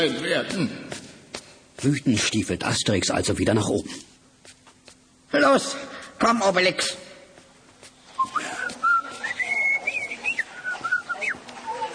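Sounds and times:
speech: 0:00.0 - 0:01.0, 0:01.8 - 0:04.6, 0:05.3 - 0:07.0
person whistling a bright lilting melody: 0:08.2 - 0:11.4.

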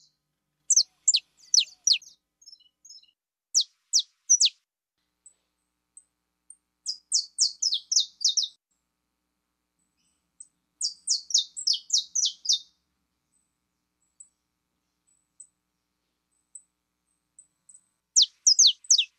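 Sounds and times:
pure Belgian canary singing: 0:00.7 - 0:04.6, 0:06.9 - 0:08.5, 0:10.8 - 0:12.7, 0:18.2 - 0:19.1.

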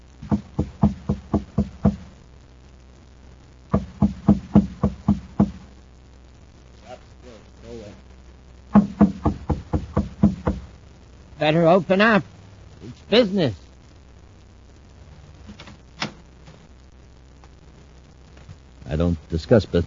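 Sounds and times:
man knocking on a door at the top of a stairway: 0:00.2 - 0:02.1, 0:03.7 - 0:05.6, 0:08.7 - 0:10.7
voice: 0:06.8 - 0:08.1, 0:11.4 - 0:13.7, 0:18.8 - 0:19.8
speech: 0:11.4 - 0:13.6, 0:19.0 - 0:19.8.

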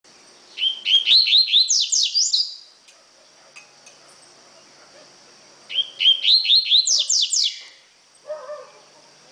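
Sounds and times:
faint constant high hiss: 0:00.0 - 0:09.2
Double-collared seedeater giving rising whistled notes and buzzy down-slurred sweeps: 0:00.5 - 0:02.7, 0:05.7 - 0:07.9.

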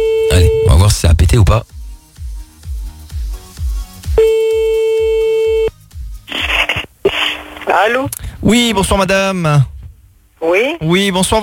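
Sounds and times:
telephone line tone while placing a call: 0:00.0 - 0:00.7, 0:04.2 - 0:05.7
low thumping beat: 0:00.4 - 0:06.6
speech: 0:01.0 - 0:01.8, 0:07.8 - 0:09.7, 0:10.4 - 0:11.4.

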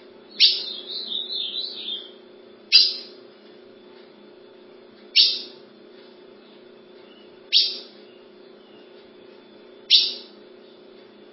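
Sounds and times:
low steady hum: 0:00.0 - 0:11.3
ultramarine grosbeak chip notes: 0:00.3 - 0:03.2, 0:05.0 - 0:05.6, 0:06.4 - 0:09.2, 0:09.8 - 0:11.0.

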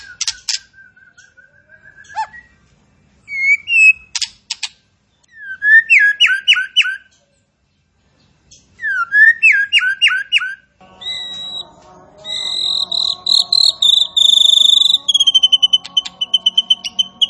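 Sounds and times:
striated grassbird singing sliding whistled notes: 0:00.0 - 0:02.6, 0:03.2 - 0:04.2, 0:05.3 - 0:07.1, 0:08.8 - 0:11.7, 0:12.3 - 0:17.2.

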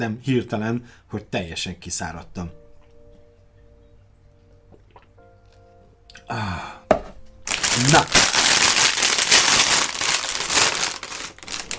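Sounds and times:
speech: 0:00.0 - 0:02.6, 0:06.3 - 0:06.8, 0:07.8 - 0:08.3
numbered plastic parts bag being torn open: 0:07.5 - 0:11.7.

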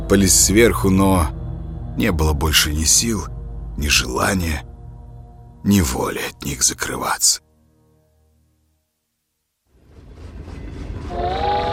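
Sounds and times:
speech: 0:00.1 - 0:01.4, 0:02.0 - 0:04.7, 0:05.6 - 0:07.4
train gathering speed on its way to Moscow: 0:09.8 - 0:11.7.

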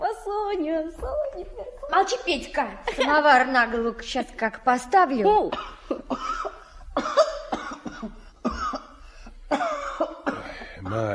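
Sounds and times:
speech: 0:00.5 - 0:06.4
boy coughing harshly from lead exposure: 0:05.3 - 0:11.1.

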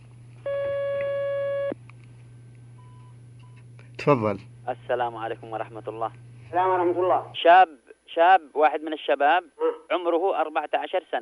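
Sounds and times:
telephone line tone as a phone call connects: 0:00.4 - 0:01.8
speech: 0:04.0 - 0:11.2.

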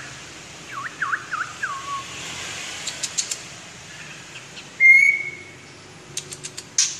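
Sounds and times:
white-rumped shama singing whistled notes: 0:00.7 - 0:02.1, 0:04.8 - 0:05.5.

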